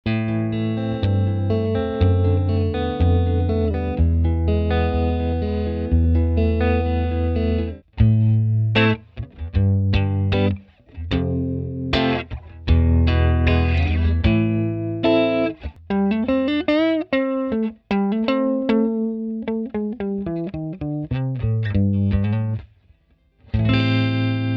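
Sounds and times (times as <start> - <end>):
Ampeg Jet 12 guitar amplifier: 0.1 - 24.5.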